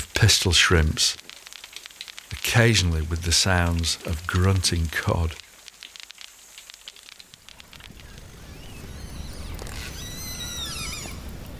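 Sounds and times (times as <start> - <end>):
speech: 0.2 - 1.2, 2.5 - 5.4
rushing underwater background: 7.4 - 11.5
orca pod echolocation clicking pulses while hunting: 7.5 - 11.5
orca whistled contact calls: 8.0 - 11.5.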